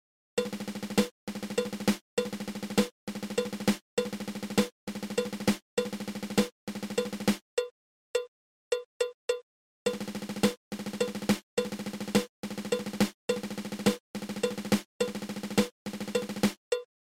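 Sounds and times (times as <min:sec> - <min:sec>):
nine stroke drum roll: 0:00.4 - 0:07.4, 0:09.9 - 0:16.6.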